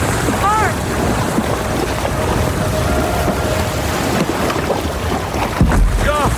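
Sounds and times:
loud steady surf roar: 0.0s - 6.3s
small boat being paddled hard through waves: 0.0s - 6.3s
brief shouted voices: 1.8s - 4.4s.

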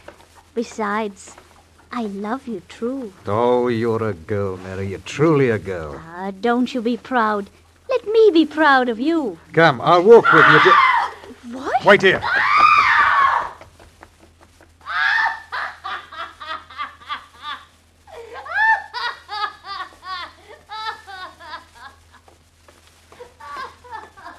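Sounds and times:
low steady hum: 0.0s - 24.3s
speech: 0.6s - 7.6s, 8.2s - 10.9s, 11.5s - 12.6s
woman screaming: 10.1s - 13.6s, 14.9s - 15.8s, 18.1s - 19.2s
laughter: 15.1s - 22.1s, 23.2s - 24.3s.

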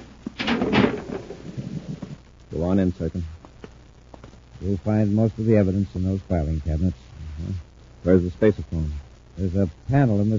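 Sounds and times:
low shuffling rattle: 0.0s - 2.2s
concealed door in a sub-basement grinding open: 0.4s - 1.9s
speech: 2.6s - 3.4s, 4.6s - 10.3s.

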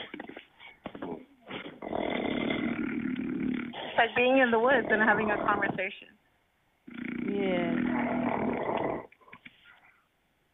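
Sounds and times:
loud rough snoring: 1.7s - 4.0s, 4.6s - 5.8s, 6.9s - 9.1s
speech: 4.0s - 6.2s.

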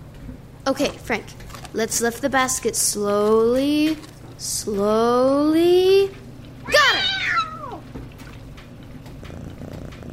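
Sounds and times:
speech: 0.7s - 6.8s
female cat meowing while caught with an empty laundry basket: 6.7s - 7.9s
female cat purring low and steady: 7.2s - 10.1s.

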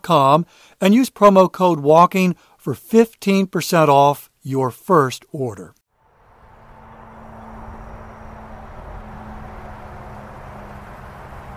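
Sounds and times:
speech: 0.1s - 5.8s
busy highway traffic roar heard from a parking lot: 5.9s - 11.5s.

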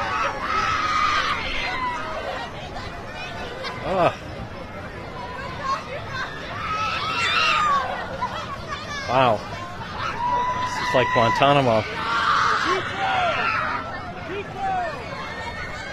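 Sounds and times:
people screaming in a noisy crowd at a feast: 0.0s - 2.5s, 6.2s - 8.2s, 9.8s - 15.9s
crowd babble and chatter at a feast: 0.0s - 15.9s
speech: 4.0s - 4.2s, 9.1s - 9.5s, 10.9s - 12.0s.

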